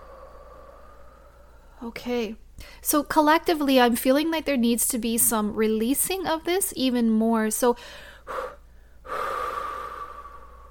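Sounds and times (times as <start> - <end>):
person breathing in through the nose and out through the mouth during guided relaxation: 0.0 - 1.8, 7.8 - 10.6
speech: 1.8 - 8.4.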